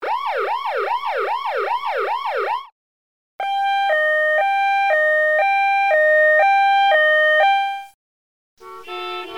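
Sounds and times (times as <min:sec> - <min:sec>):
police car: 0:00.0 - 0:02.7, 0:03.4 - 0:07.9.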